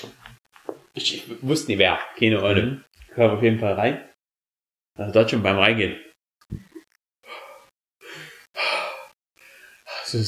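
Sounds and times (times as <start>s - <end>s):
speech: 1.0s - 4.1s, 5.0s - 6.7s
person imitating heavy breathing: 7.2s - 9.2s.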